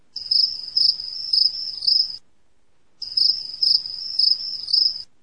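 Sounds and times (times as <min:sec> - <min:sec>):
cricket chirping at night: 0:00.2 - 0:02.3, 0:03.0 - 0:05.1.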